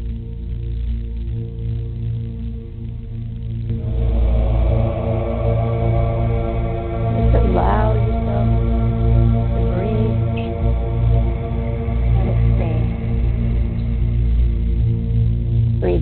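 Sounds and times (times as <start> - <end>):
deep steady drone of meditation music: 0.0 - 15.9
gong ringing: 3.7 - 14.2.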